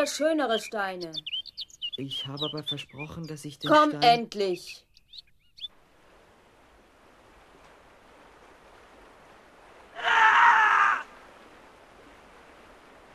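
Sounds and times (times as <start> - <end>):
speech: 0.0 - 1.4, 2.0 - 5.3
water or surf noise: 5.7 - 13.1
man screaming in agony: 10.0 - 11.1.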